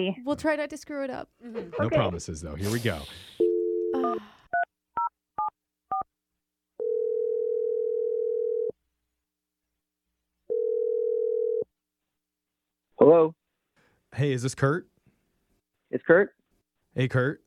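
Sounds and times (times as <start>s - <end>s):
speech: 0.0s - 3.4s, 4.0s - 4.4s, 13.0s - 13.4s, 14.1s - 14.9s, 15.9s - 16.4s, 17.0s - 17.4s
telephone dial tone: 6.8s - 8.7s, 10.5s - 11.6s.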